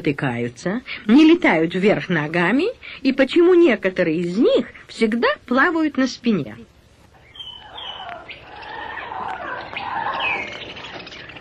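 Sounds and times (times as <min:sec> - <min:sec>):
speech: 0:00.0 - 0:06.7
hummingbird chirping: 0:07.2 - 0:11.3.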